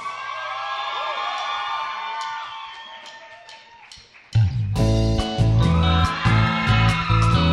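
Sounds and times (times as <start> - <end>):
live crowd at a band's concert shouting and cheering: 0.0 - 7.5
strong rhythmic music with heavy bass: 4.3 - 7.5.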